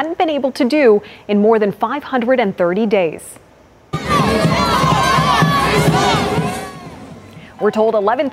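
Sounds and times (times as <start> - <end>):
speech: 0.0 - 3.4, 5.7 - 6.3, 7.6 - 8.3
soccer fans shouting: 4.0 - 7.7
large home crowd cheering at a soccer match: 4.0 - 8.3.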